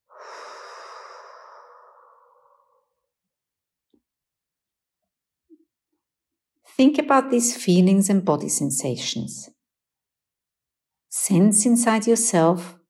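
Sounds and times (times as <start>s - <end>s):
deep breath during a guided relaxation exercise: 0.0s - 3.1s
speech: 6.8s - 9.6s, 11.3s - 12.8s.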